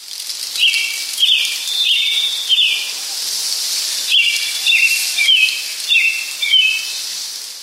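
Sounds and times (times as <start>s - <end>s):
steady airy hiss of woodland ambience: 0.0s - 7.6s
birds singing in a forest of pines and spruces: 0.5s - 3.0s, 3.9s - 7.1s.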